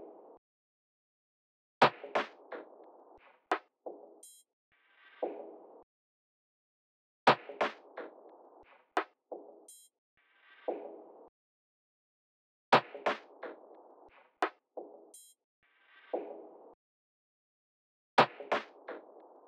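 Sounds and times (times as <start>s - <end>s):
percussion drum loop: 1.8s - 4.4s, 7.3s - 8.6s, 9.3s - 9.9s, 12.8s - 14.1s, 18.2s - 19.4s.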